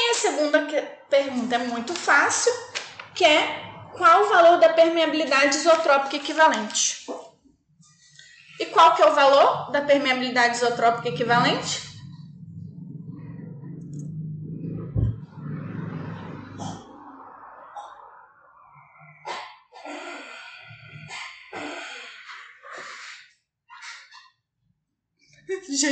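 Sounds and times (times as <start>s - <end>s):
speech: 0.4s - 7.2s, 8.6s - 11.9s
dog growling: 10.6s - 17.0s.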